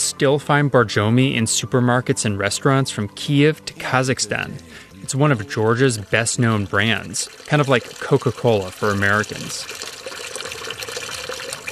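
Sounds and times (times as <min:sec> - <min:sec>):
speech: 0:00.2 - 0:09.9
mineral water running from public fountain spout: 0:03.9 - 0:11.7.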